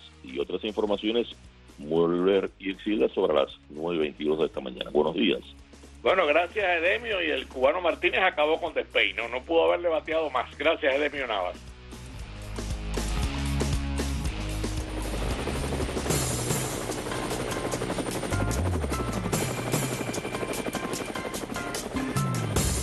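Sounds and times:
speech: 0.2 - 11.7
helicopter rotor blades whirring: 11.9 - 22.8.

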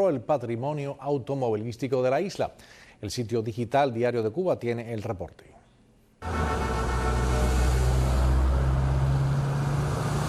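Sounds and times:
speech: 0.0 - 5.6
classic and vintage car engines rumbling on the Malecón seaside avenue in Havana: 6.2 - 10.2.

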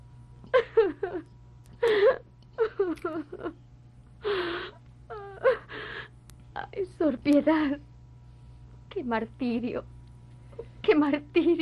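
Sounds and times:
low steady hum: 0.0 - 11.6
woman crying and sobbing: 0.5 - 1.2, 1.8 - 3.6, 4.2 - 6.2
speech: 7.2 - 7.9, 9.0 - 9.9, 10.9 - 11.6.

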